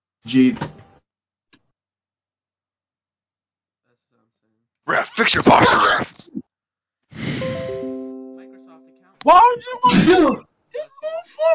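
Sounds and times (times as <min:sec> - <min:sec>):
speech: 0:00.2 - 0:00.8, 0:04.9 - 0:06.4, 0:09.2 - 0:11.5
loud sneeze: 0:09.9 - 0:10.4.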